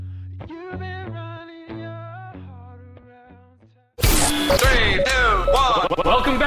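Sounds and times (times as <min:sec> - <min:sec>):
hip hop station bumper beat with thick bass line and distorted synth notes: 0:04.0 - 0:06.4.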